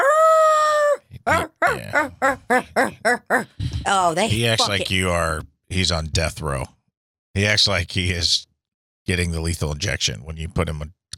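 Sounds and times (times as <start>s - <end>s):
person imitating a dog howling: 0.0s - 3.5s
person talking rapidly and loudly: 1.2s - 2.2s, 3.6s - 6.7s, 7.4s - 8.4s, 9.1s - 11.1s
speech: 1.9s - 6.8s, 7.4s - 8.5s, 9.1s - 11.0s.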